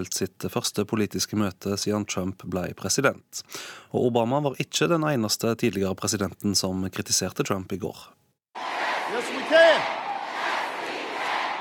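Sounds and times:
speech: 0.0s - 8.2s
large crowd chanting a political slogan in unison in Virginia: 8.6s - 11.5s.

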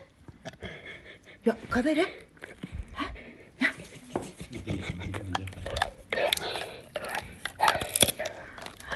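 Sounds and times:
dog panting: 0.6s - 7.4s
speech: 1.8s - 2.2s
dog crunching a hard chew bone: 4.8s - 8.9s.

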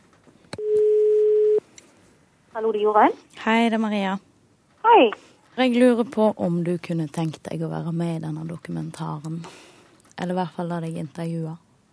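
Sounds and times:
telephone ringing tone as a call is placed: 0.6s - 1.6s
speech: 2.6s - 11.6s.

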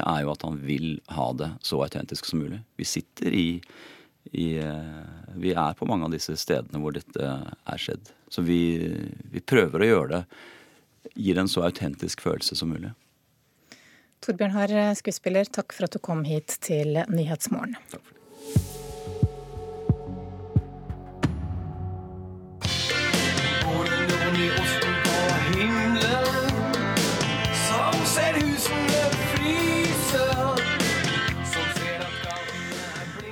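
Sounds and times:
speech: 0.2s - 13.0s, 14.2s - 19.2s
rock song with dense guitars and driving rhythm: 18.6s - 33.3s.

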